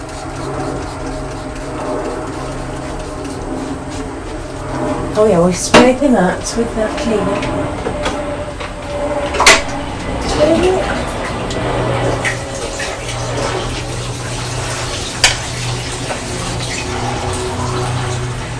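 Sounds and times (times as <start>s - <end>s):
loud aeroplane roaring overhead: 0.0s - 18.5s
speech: 5.2s - 8.1s.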